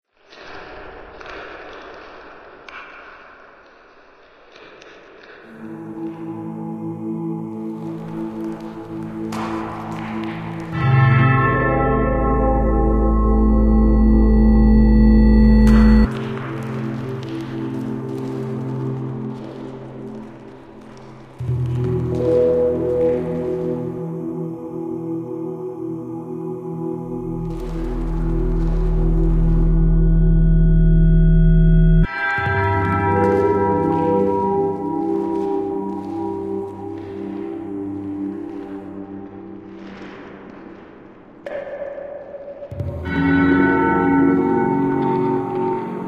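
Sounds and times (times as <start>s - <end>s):
dungeon soundtrack music with bell: 5.5s - 40.8s, 42.7s - 46.0s
bell: 9.4s - 18.4s, 27.4s - 37.8s, 42.7s - 46.0s.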